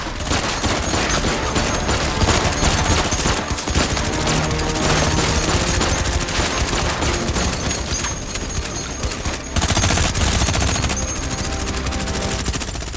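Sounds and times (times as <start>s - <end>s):
sustained rapid gunfire volley: 0.0s - 12.9s.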